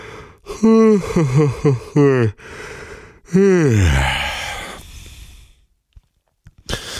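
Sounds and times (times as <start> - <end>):
person giving big drawn-out yawns: 0.5 - 2.4, 3.3 - 4.9.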